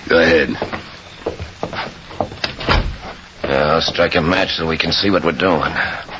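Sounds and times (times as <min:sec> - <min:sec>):
speech: 0:00.1 - 0:01.4, 0:03.6 - 0:06.1
office door clattering open: 0:02.4 - 0:03.1.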